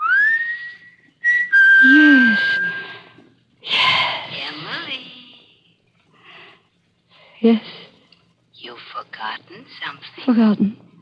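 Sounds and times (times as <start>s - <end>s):
man whistling a signal: 0.0s - 3.1s
speech: 7.4s - 7.7s, 9.7s - 10.8s.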